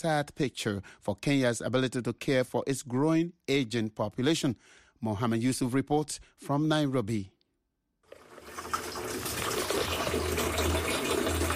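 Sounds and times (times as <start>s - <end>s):
speech: 0.0s - 7.3s
water gushing from a tap: 8.1s - 11.5s.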